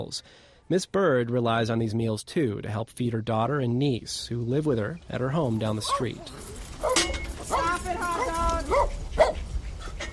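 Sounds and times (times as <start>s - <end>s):
speech: 0.0s - 6.9s
dog yipping and whining: 5.8s - 9.7s.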